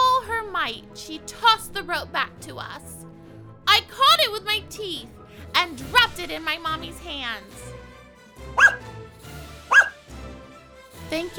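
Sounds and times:
speech: 0.7 - 3.1, 3.7 - 7.8, 8.4 - 8.9, 11.1 - 11.3
puppy barking: 8.6 - 8.9, 9.7 - 10.1.

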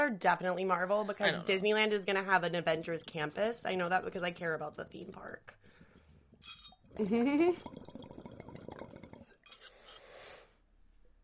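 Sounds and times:
speech: 0.0 - 5.6, 6.9 - 8.1
liquid pouring into a container: 2.6 - 9.7.

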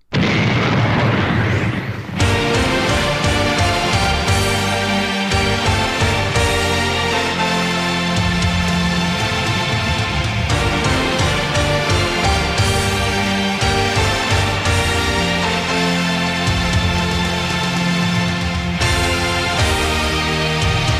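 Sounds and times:
booming explosion: 0.1 - 4.6
energetic wrestling entrance music: 2.2 - 20.9.

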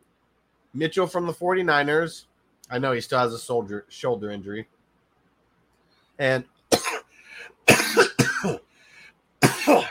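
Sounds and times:
speech: 0.7 - 4.8, 6.2 - 6.5, 7.4 - 8.6
person coughing: 6.7 - 8.7, 9.4 - 9.8.

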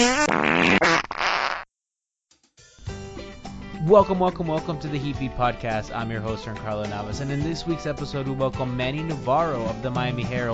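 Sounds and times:
loud buzzy fart noises: 0.0 - 1.7
speech: 3.9 - 10.5.

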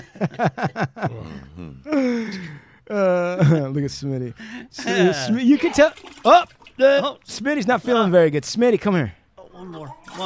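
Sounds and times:
speech: 0.0 - 10.2
person choking and gasping after inhaling peanut particles while eating and talking: 1.1 - 2.6.

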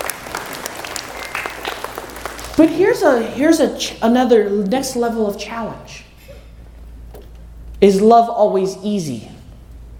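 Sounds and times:
small group of children clapping: 0.0 - 3.1
speech: 2.6 - 6.0, 7.8 - 9.3.

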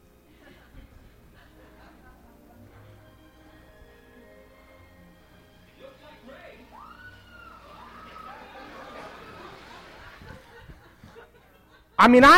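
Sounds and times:
laughter: 0.2 - 6.7, 7.3 - 12.0
babble of chatter: 0.2 - 11.5
crowd screaming in fright: 6.6 - 10.4.

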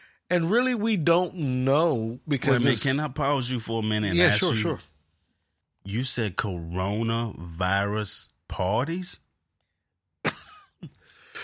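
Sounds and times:
speech: 0.3 - 4.9, 5.8 - 9.2
person coughing after choking on a drink: 10.3 - 11.4.

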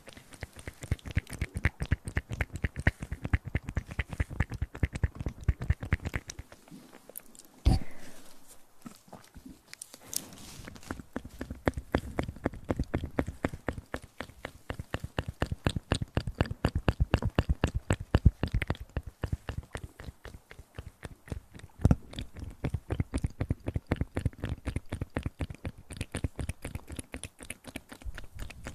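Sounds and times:
close-up wet mouth clicks and smacks: 0.0 - 8.1, 9.2 - 28.7
low breathy sound: 7.6 - 8.6.

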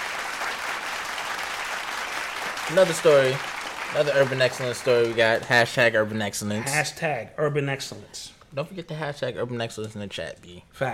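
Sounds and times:
applause from a group: 0.0 - 5.5
speech: 2.7 - 10.9.

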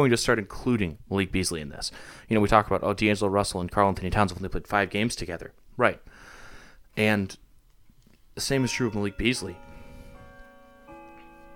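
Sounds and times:
speech: 0.0 - 6.3, 7.0 - 7.4, 8.4 - 9.7
grandfather clock chiming: 8.4 - 11.5.

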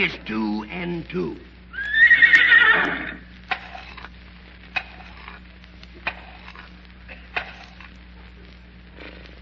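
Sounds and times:
speech: 0.0 - 1.6
faint steady hum: 0.0 - 9.3
horse whinnying: 1.7 - 3.2.

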